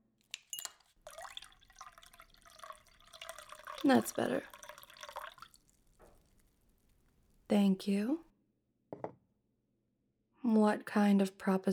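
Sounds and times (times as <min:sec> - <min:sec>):
light glassy clinks: 0:00.4 - 0:03.8
water pouring into a glass: 0:00.4 - 0:06.8
speech: 0:03.8 - 0:04.6, 0:07.5 - 0:08.3, 0:10.5 - 0:11.7.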